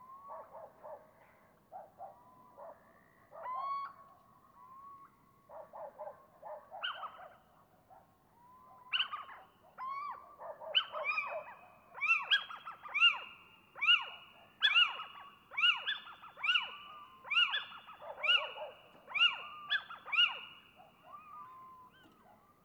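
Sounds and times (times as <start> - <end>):
little owl pair giving yelping calls: 8.9 - 10.2, 10.8 - 22.2
little owl pair whistling: 13.8 - 20.5, 21.1 - 22.2.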